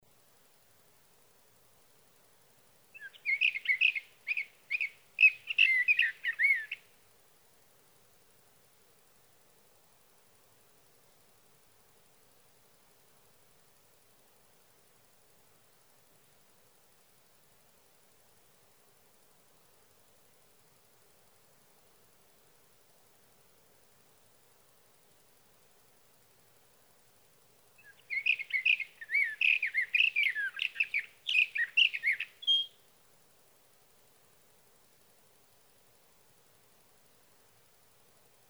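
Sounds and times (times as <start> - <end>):
Sage thrasher singing at night: 3.0 - 6.8, 27.8 - 32.8.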